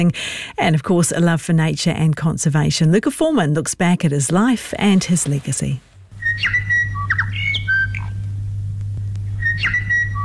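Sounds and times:
speech: 0.0s - 6.6s
steady low hum: 0.0s - 10.2s
bird calls aired on a national radio program: 6.2s - 8.2s, 9.4s - 10.2s.

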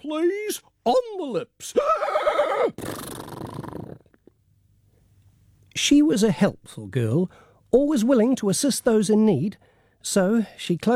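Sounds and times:
speech: 0.1s - 3.1s, 5.8s - 10.9s
horse whinnying and snorting: 1.8s - 3.8s.

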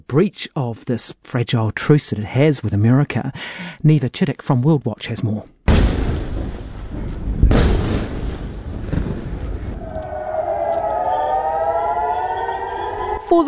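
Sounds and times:
speech: 0.1s - 6.0s
sharp boom: 5.7s - 11.2s
low rumbling: 5.8s - 13.2s
air raid siren wailing over a city: 9.5s - 13.4s.

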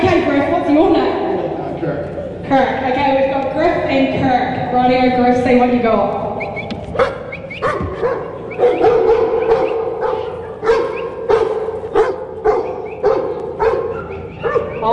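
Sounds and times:
constant hum: 0.0s - 14.9s
speech: 3.9s - 6.2s
working dog barking sharply: 6.9s - 14.9s.

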